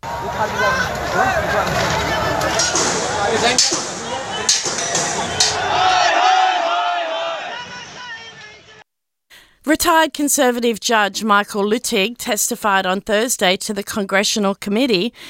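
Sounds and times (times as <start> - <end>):
large protest crowd shouting and chanting in Palwal district, Haryana, India: 0.0 - 8.8
speech: 0.2 - 6.2, 9.7 - 15.2
sharp bangs or cracks: 0.9 - 6.5.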